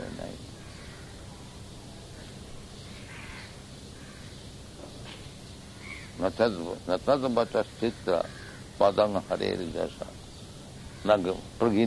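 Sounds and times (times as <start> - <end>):
steady hiss of outdoor noise: 0.0 - 11.8
black crow cawing in harsh bursts: 0.6 - 1.2, 3.0 - 4.4, 5.7 - 6.2, 7.9 - 9.0, 10.8 - 11.3
speech: 6.2 - 10.2, 11.0 - 11.8.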